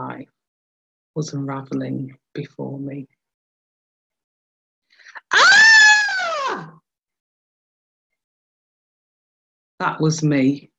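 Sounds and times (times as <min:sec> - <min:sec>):
speech: 0:01.2 - 0:03.2, 0:09.8 - 0:10.7
person wailing in anguish: 0:05.3 - 0:06.7.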